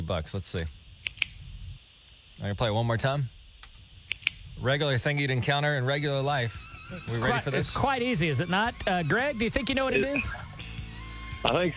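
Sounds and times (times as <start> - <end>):
faint low hum: 0.0 - 11.7
speech: 0.1 - 0.8, 2.4 - 3.4, 4.6 - 10.5, 11.4 - 11.7
ballpoint pen clicking: 1.0 - 1.4, 3.6 - 4.4.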